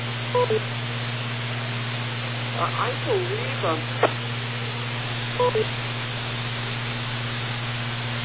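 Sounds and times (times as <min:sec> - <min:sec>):
low hum: 0:00.0 - 0:08.2
speech: 0:00.4 - 0:00.9, 0:02.6 - 0:04.2, 0:05.4 - 0:05.8
radio beep on an amateur radio channel: 0:05.4 - 0:05.7.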